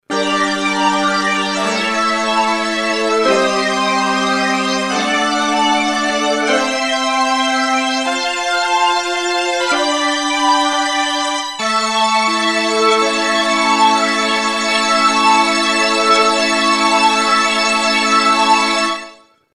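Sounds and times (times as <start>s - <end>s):
phased string synthesizer: 0.1s - 19.2s.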